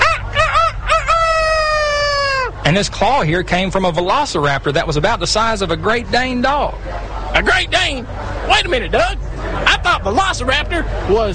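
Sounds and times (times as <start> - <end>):
rooster crowing: 0.0 - 2.6
speech: 2.6 - 11.3.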